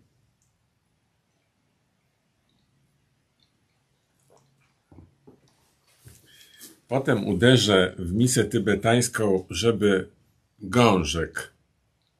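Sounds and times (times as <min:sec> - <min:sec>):
sipping water from a copper cup: 0:02.2 - 0:06.9
speech: 0:06.9 - 0:11.5.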